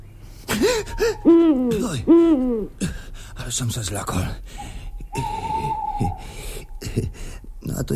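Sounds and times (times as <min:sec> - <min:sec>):
low constant rumble: 0:00.0 - 0:07.9
owl hooting: 0:00.5 - 0:02.8, 0:04.5 - 0:06.9
speech: 0:00.7 - 0:05.4, 0:07.0 - 0:07.9.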